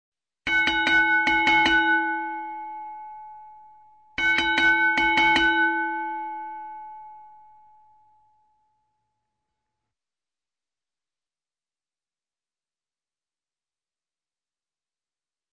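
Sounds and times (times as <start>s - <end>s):
low-pitched small bell: 0.5s - 9.8s.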